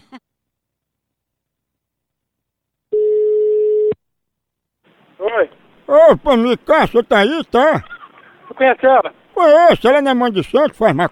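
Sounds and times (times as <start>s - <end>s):
telephone busy tone: 2.9s - 4.0s
speech: 5.3s - 8.0s, 8.6s - 11.1s.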